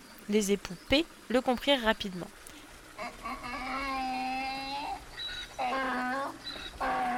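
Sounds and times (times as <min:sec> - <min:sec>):
speech: 0:00.3 - 0:02.4
donkey braying: 0:03.0 - 0:07.1.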